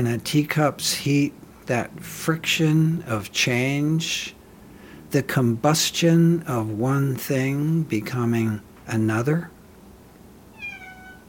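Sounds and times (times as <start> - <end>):
speech: 0.0 - 4.4, 5.1 - 9.6
low hum: 0.0 - 11.2
cat meowing: 10.5 - 11.2.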